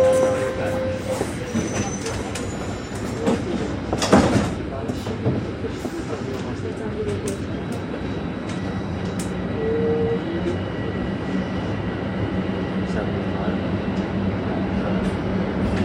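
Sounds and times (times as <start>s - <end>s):
metallic squeals: 0.0s - 3.1s
subway train rumbling between stations toward Lawrence Station: 0.0s - 15.8s.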